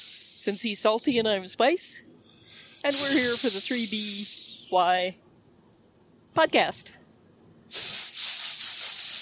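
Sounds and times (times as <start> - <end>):
person imitating a snake with a sustained hiss: 0.0 - 0.5, 2.7 - 4.6, 7.7 - 9.1
speech: 0.4 - 2.1, 2.8 - 5.2, 6.4 - 7.0.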